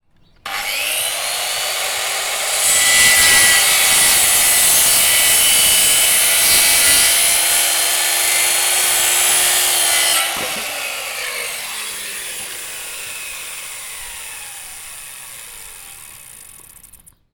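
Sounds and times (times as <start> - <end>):
circular saw: 0.4 - 17.2.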